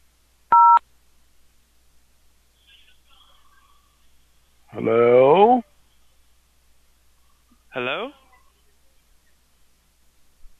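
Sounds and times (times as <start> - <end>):
telephone keypad tone: 0.5 - 0.8
speech: 4.8 - 5.2.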